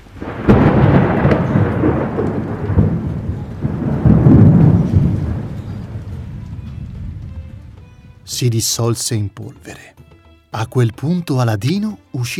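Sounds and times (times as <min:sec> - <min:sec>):
thunder rumbling during a storm: 0:00.0 - 0:08.6
rain falling: 0:00.0 - 0:08.9
speech: 0:08.4 - 0:12.3.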